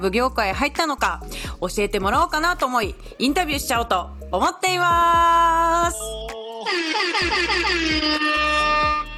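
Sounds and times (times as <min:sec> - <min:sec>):
speech: 0:00.0 - 0:09.0
air horn blasts set off by hand: 0:06.7 - 0:09.1.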